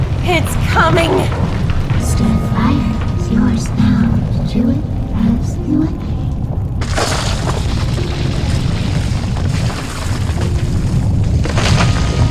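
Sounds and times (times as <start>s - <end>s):
crackling rattling bursts: 0.0s - 12.2s
earthquake shaking a room with a deep rumbling boom: 0.0s - 12.2s
speech: 0.3s - 1.5s.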